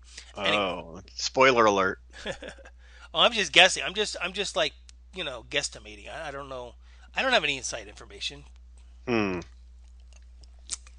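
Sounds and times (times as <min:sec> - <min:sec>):
speech: 0:00.4 - 0:09.5
sipping an energy drink: 0:09.1 - 0:09.4.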